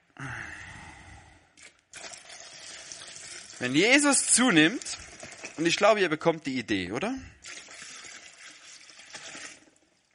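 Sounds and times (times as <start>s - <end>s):
water being poured into a container: 1.6s - 6.3s, 7.3s - 10.1s
speech: 3.6s - 5.0s, 5.6s - 7.3s.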